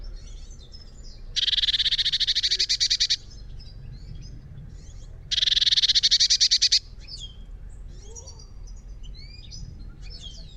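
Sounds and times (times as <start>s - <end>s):
Eurasian blue tit Cyanistes caeruleus harsh buzzy churring rattles: 0.2s - 7.3s.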